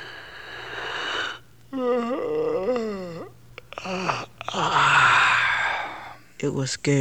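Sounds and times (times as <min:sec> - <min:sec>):
loud drawn-out moaning yawn: 0:00.0 - 0:06.2
short breathy vocal sounds: 0:00.0 - 0:06.3
speech: 0:01.7 - 0:02.4, 0:06.4 - 0:06.9.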